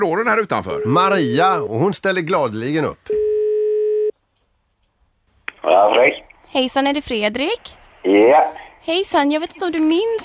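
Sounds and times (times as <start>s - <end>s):
speech: 0.0s - 3.2s, 5.6s - 10.2s
telephone ringback tone during outgoing call through a phone line: 3.1s - 4.1s.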